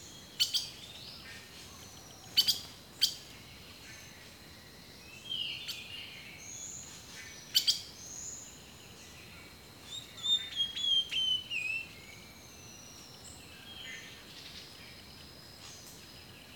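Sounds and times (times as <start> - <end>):
quiet background hiss: 0.0 - 16.5
rainforest bird song with chirp and downward whistled notes: 9.9 - 11.9.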